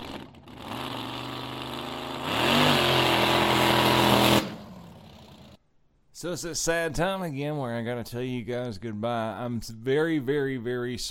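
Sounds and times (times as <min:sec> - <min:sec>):
big new toy car engine idling and revving: 0:00.0 - 0:05.6
speech: 0:06.2 - 0:11.0.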